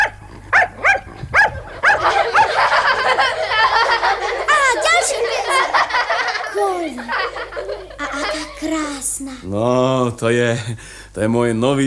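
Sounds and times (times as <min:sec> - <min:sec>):
trained dog barking during circus tricks: 0:00.0 - 0:02.7
people laughing: 0:01.7 - 0:08.6
lively voices: 0:02.0 - 0:11.8
speech: 0:09.3 - 0:11.8.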